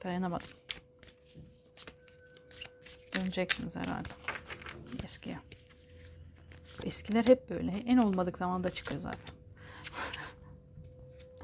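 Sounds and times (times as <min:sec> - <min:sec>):
speech: 0:00.0 - 0:00.7, 0:03.2 - 0:04.2, 0:04.9 - 0:05.5, 0:06.8 - 0:09.3
tarot cards being shuffled and drawn: 0:00.3 - 0:10.3.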